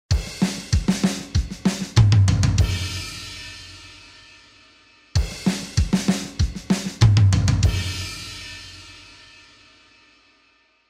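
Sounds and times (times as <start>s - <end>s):
fun drums playing: 0.1s - 4.4s, 5.2s - 9.6s.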